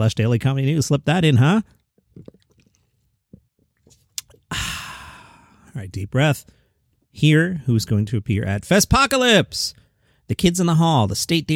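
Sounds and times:
speech: 0.0s - 2.3s, 5.8s - 6.6s, 7.2s - 11.5s
slurping iced coffee: 1.7s - 4.5s
wet smacking sounds: 2.0s - 4.5s
mouth clicks: 4.1s - 4.8s.

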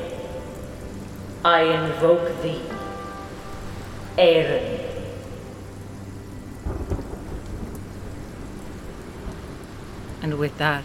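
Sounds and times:
steady rain: 0.0s - 10.8s
speech: 1.4s - 2.8s, 4.2s - 4.8s, 10.3s - 10.8s
deep rolling thunder: 6.6s - 10.2s.

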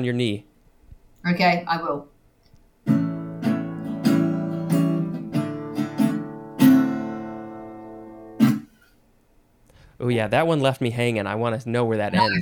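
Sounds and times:
speech: 0.0s - 0.5s, 1.2s - 2.1s, 10.0s - 12.4s
guitar strumming: 2.8s - 8.8s.

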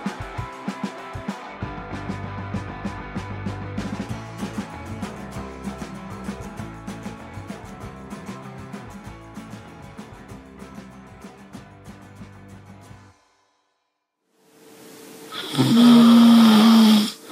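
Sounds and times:
music: 0.0s - 17.2s
person snoring loudly: 15.3s - 17.2s.

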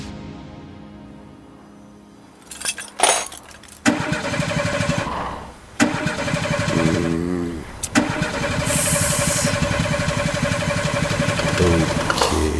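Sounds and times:
car engine cranking and failing to start: 2.5s - 5.1s, 5.8s - 7.2s, 7.8s - 12.4s.

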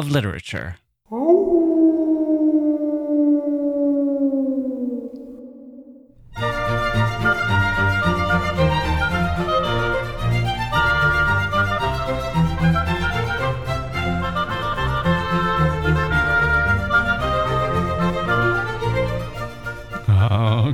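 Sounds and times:
speech: 0.0s - 1.2s
wolf howl: 1.1s - 7.9s
music: 6.2s - 20.7s.

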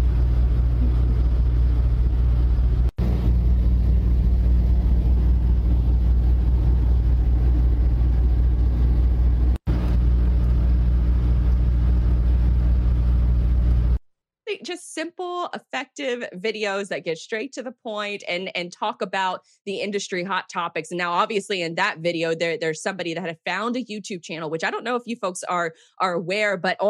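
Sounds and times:
semi-truck engine rumbling: 0.0s - 14.0s
speech: 14.7s - 26.8s.

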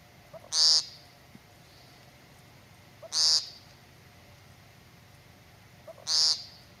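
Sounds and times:
American woodcock peent calls: 0.0s - 2.2s, 2.8s - 4.0s, 5.8s - 6.7s.

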